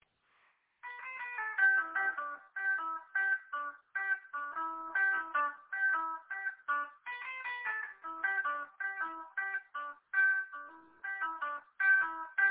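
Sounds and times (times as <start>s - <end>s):
happy go lucky tune: 0.9s - 12.4s.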